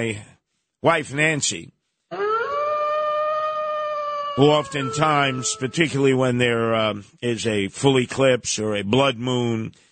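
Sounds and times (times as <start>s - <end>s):
speech: 0.0s - 1.8s, 4.4s - 9.9s
voice imitating a wolf howling: 2.4s - 6.0s.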